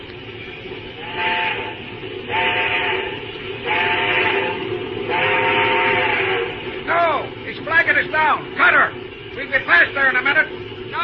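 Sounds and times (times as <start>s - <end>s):
continuous hissing, rumbling background: 0.0s - 11.0s
steam locomotive whistle blasts: 1.0s - 6.6s.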